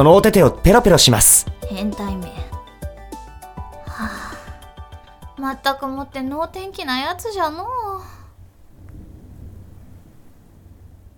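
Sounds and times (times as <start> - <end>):
speech: 0.0 - 2.3, 5.4 - 8.2
steady rain: 7.7 - 11.1.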